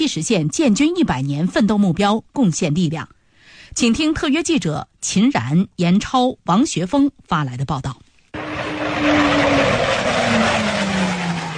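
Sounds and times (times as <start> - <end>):
speech: 0.0 - 8.0, 9.0 - 9.8
J-20 fighter jets roaring as they accelerate into takeoff: 8.4 - 11.5.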